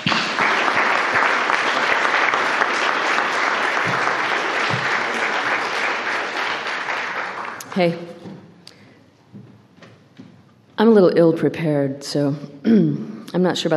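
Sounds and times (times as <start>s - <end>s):
room full of people clapping: 0.0s - 8.0s
speech: 7.8s - 8.3s, 10.8s - 13.7s.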